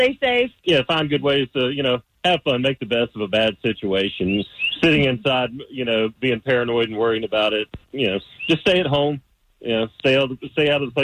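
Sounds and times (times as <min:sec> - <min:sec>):
speech: 0:00.0 - 0:11.0
birds chirping: 0:02.6 - 0:10.5
laughter: 0:04.2 - 0:05.6.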